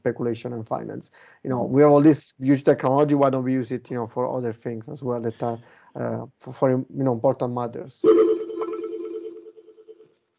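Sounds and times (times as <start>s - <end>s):
speech: 0.0s - 8.2s
phone ringing with a steady electronic tone: 8.0s - 10.1s.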